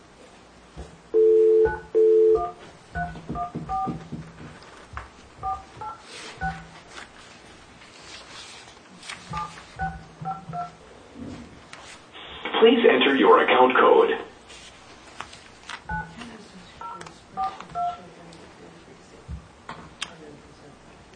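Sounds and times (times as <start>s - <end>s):
faint noise: 0.0s - 21.1s
touch-tone keypad dialing of a cell phone number: 1.2s - 4.0s, 16.8s - 18.0s
speech: 12.6s - 14.2s.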